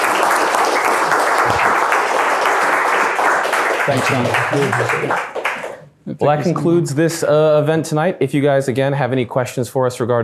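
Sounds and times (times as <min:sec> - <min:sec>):
audience applause for a speaker at an evening event: 0:00.0 - 0:05.8
speech: 0:03.9 - 0:05.4, 0:06.0 - 0:10.2
voices murmuring: 0:06.1 - 0:07.2.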